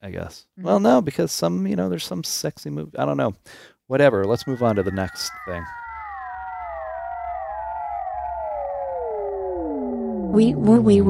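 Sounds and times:
speech: 0.0s - 5.8s, 10.3s - 11.0s
voice imitating an emergency vehicle two-tone siren: 4.3s - 11.0s.

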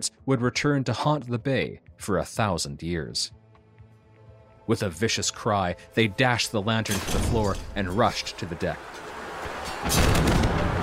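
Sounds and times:
speech: 0.0s - 3.4s, 4.7s - 10.4s
cannon shots booming from a battle aboard a ship: 9.8s - 10.8s
gunfire from a battle aboard a ship: 9.8s - 10.8s.

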